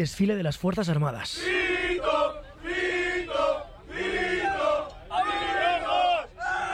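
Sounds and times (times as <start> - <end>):
speech: 0.0 - 2.0
soldiers chanting and cheering on a bus: 1.3 - 6.7.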